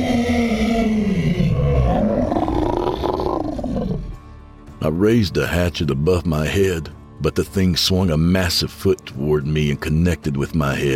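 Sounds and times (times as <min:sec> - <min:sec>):
deep guttural monster roar: 0:00.0 - 0:04.2
speech: 0:04.8 - 0:10.9.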